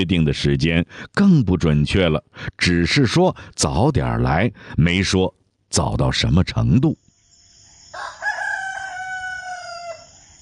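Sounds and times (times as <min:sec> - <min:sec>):
speech: 0:00.0 - 0:07.0
rooster crowing: 0:07.9 - 0:10.3.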